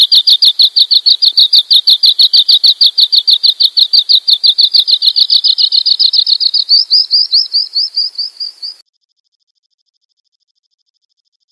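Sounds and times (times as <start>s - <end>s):
sanma bird warbling trill: 0.0s - 8.8s.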